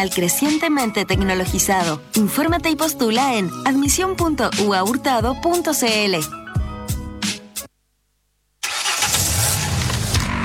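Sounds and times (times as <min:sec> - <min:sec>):
speech: 0:00.0 - 0:06.4
car engine cranking and starting: 0:08.6 - 0:10.4.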